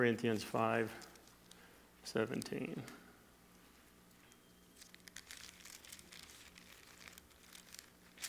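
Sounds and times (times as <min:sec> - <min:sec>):
speech: 0:00.0 - 0:01.1, 0:02.0 - 0:03.0
Bible pages being turned: 0:04.8 - 0:08.2.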